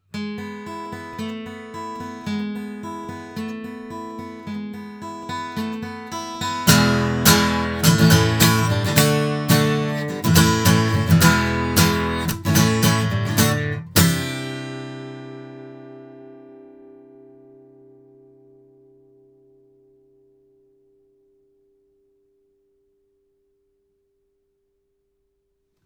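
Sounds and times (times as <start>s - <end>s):
guitar recorded with a blue Yeti Pro microphone: 0.0s - 22.8s.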